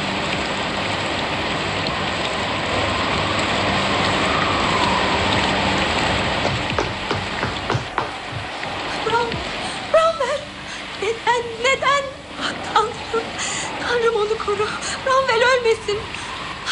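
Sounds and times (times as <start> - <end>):
sharp drips and knocks: 0.0 - 9.9
heavy rain spattering on surfaces: 0.0 - 16.6.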